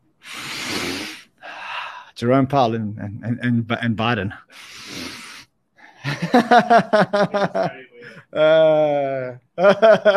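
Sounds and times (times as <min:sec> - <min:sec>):
exaggerated sniffing: 0:00.2 - 0:01.4, 0:04.5 - 0:05.5
speech: 0:02.2 - 0:05.1, 0:06.1 - 0:10.1
laughter: 0:06.0 - 0:10.1.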